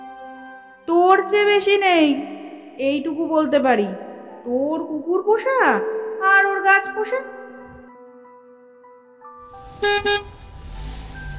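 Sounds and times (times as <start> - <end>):
speech: 1.2 - 6.0, 6.6 - 7.4, 9.8 - 10.3
Standard car engine rumbling on Jessore Road: 9.4 - 11.3
Standard car horn toots: 9.6 - 10.6.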